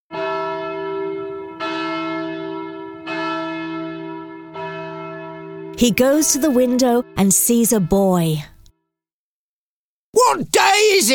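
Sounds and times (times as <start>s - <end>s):
church bell tolling: 0.1s - 8.6s
speech: 5.8s - 8.5s, 10.3s - 11.1s.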